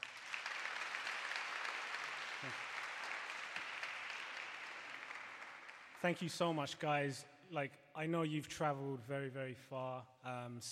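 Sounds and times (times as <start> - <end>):
audience applause: 0.0 - 6.6
speech: 2.4 - 2.7, 6.0 - 10.7.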